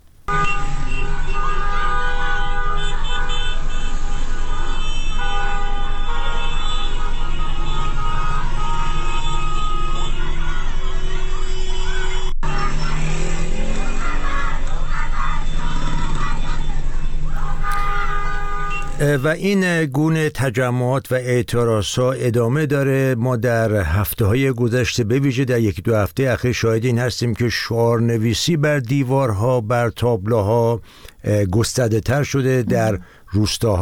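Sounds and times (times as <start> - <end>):
street traffic noise: 0.0 - 19.9, 26.2 - 33.8
car horns honking in a busy street: 0.3 - 12.8, 17.2 - 19.4, 32.6 - 33.8
speech: 19.1 - 33.8.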